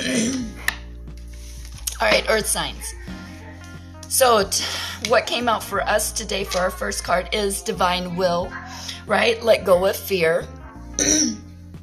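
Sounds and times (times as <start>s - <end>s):
raspy throat clearing: 0.0s - 0.7s, 11.0s - 11.4s
speech: 2.0s - 3.1s, 4.1s - 11.4s.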